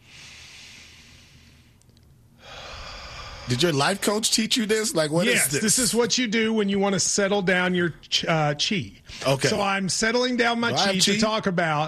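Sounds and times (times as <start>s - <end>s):
slow breathing in and out to open a yoga class: 0.0s - 3.6s
speech: 3.5s - 11.8s.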